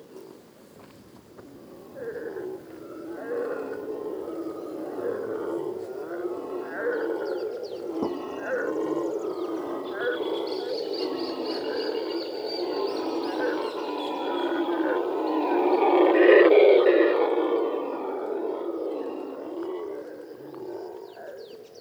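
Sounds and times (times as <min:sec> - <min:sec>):
black and gold howler Alouatta caraya howling: 0:01.9 - 0:21.1.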